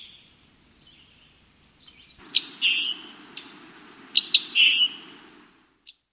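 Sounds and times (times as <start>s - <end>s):
scarlet tanager: 2.2s - 5.8s.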